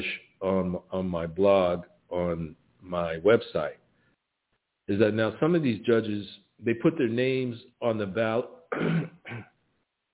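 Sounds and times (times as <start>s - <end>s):
speech: 0.0s - 3.8s, 4.9s - 9.5s
throat clearing: 8.7s - 9.6s.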